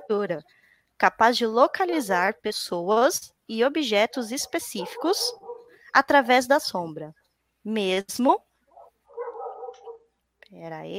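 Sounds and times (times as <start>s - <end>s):
speech: 0.1s - 8.5s, 10.5s - 10.9s
dog barking over a call microphone: 4.8s - 5.8s, 8.7s - 10.1s.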